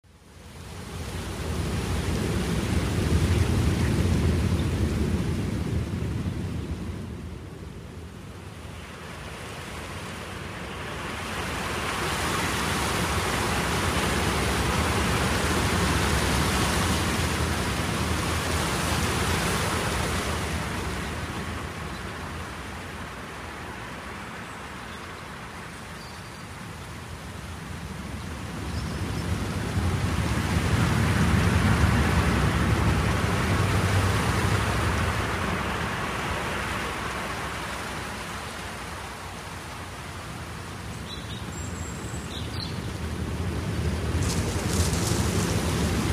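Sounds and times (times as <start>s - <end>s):
countryside ambience: 0.0s - 46.1s.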